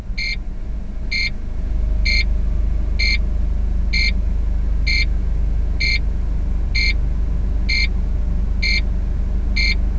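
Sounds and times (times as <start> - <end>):
minibus: 0.0 - 9.9.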